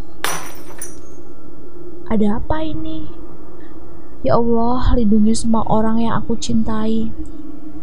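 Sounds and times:
drinking glass hitting a kitchen floor and shattering: 0:00.2 - 0:01.2
tinkling shards of a drinking glass: 0:00.2 - 0:01.2
speech: 0:02.1 - 0:03.2, 0:04.2 - 0:07.3.

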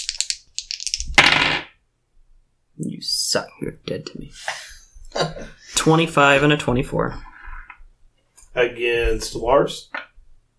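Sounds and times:
dice rattling and rolling across a hard surface: 0:00.0 - 0:01.7
speech: 0:03.0 - 0:04.6, 0:05.2 - 0:07.3, 0:08.6 - 0:10.0.

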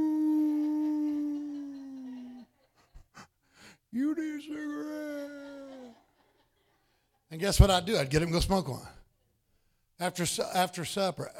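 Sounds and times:
human voice mimicking a wolf howl: 0:00.0 - 0:02.4, 0:04.2 - 0:06.0
speech: 0:03.9 - 0:05.2, 0:07.4 - 0:09.0, 0:10.0 - 0:11.3.

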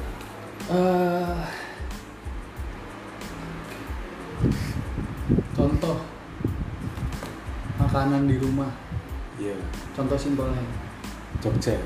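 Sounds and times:
electric fan whirring in a room: 0:00.0 - 0:11.8
speech: 0:00.7 - 0:01.6, 0:08.0 - 0:08.8, 0:09.4 - 0:11.8.

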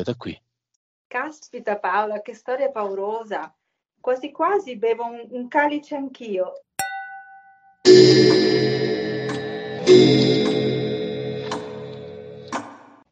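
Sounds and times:
speech: 0:00.0 - 0:00.4, 0:01.1 - 0:06.6
clock ticking: 0:07.9 - 0:12.8.

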